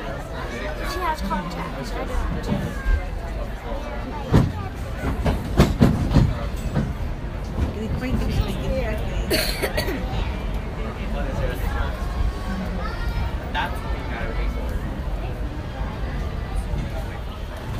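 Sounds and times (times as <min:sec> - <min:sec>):
passenger voices murmuring: 0:00.0 - 0:17.7
speech: 0:01.2 - 0:03.0, 0:08.0 - 0:10.4, 0:13.6 - 0:14.6
theme park railroad train rolling with low rumble: 0:01.4 - 0:17.7
theme park railroad train wheels clacking: 0:04.2 - 0:08.6.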